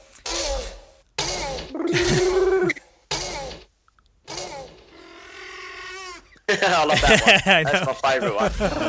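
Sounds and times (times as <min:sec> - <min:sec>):
person imitating velociraptor screeches and squeals: 0:00.2 - 0:06.3
laughter: 0:01.9 - 0:02.5, 0:06.5 - 0:08.8
speech: 0:06.6 - 0:08.8.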